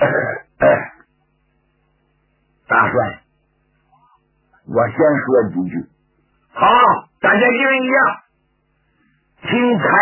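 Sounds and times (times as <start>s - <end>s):
light soft cough: 0.0s - 1.1s
speech: 4.8s - 6.0s, 6.6s - 8.2s, 9.5s - 10.0s.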